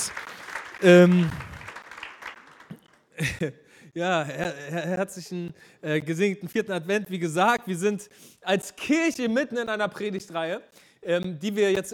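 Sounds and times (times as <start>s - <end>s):
loud sustained voiced cheer: 0.0s - 2.7s
congregation applauding: 0.0s - 3.0s
speech: 0.8s - 1.5s, 3.2s - 11.9s.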